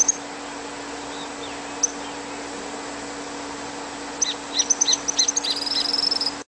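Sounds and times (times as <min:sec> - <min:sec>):
bird chirping in very high short chirps: 0:00.0 - 0:02.5, 0:04.2 - 0:06.4
constant low electrical hum: 0:00.0 - 0:06.5.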